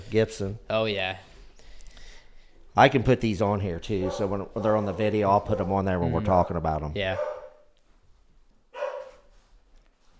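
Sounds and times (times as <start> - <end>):
speech: 0.1 - 1.3, 2.8 - 7.3
dog barking: 3.9 - 6.0, 7.0 - 7.7, 8.7 - 9.3.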